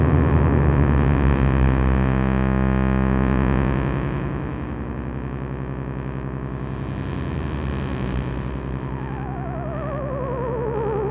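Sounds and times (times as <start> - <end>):
oscillator pitch falling: 0.2 - 11.0.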